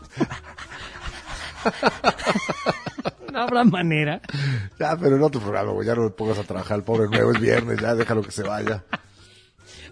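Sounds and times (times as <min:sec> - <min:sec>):
laughter: 0:00.0 - 0:03.7, 0:06.3 - 0:09.1
dog panting: 0:00.2 - 0:02.3
speech: 0:01.6 - 0:02.5, 0:03.4 - 0:09.0.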